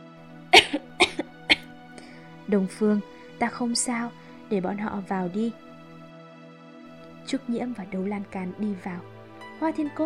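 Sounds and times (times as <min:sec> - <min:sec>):
seriously ill young woman coughing dryly in a room: 0:00.5 - 0:01.7
speech: 0:02.5 - 0:05.6, 0:07.3 - 0:10.0.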